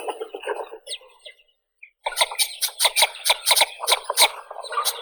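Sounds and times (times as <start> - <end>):
marbled duck Marmaronetta angustirostris calling: 2.1 - 5.0.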